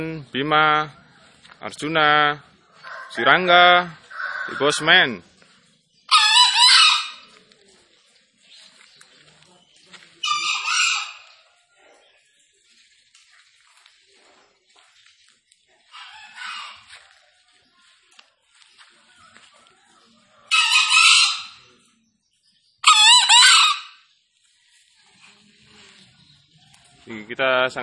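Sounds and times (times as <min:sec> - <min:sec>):
speech: 0:00.0 - 0:01.0, 0:01.6 - 0:02.5, 0:03.1 - 0:05.3
green junglefowl crowing: 0:02.8 - 0:04.9, 0:06.1 - 0:07.3, 0:10.2 - 0:11.4, 0:15.9 - 0:17.1, 0:20.4 - 0:21.7, 0:22.8 - 0:24.0.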